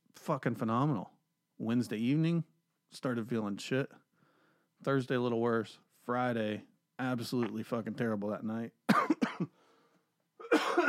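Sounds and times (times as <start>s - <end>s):
speech: 0.2s - 4.0s, 4.8s - 9.6s
person coughing harshly: 8.9s - 9.6s, 10.4s - 10.8s.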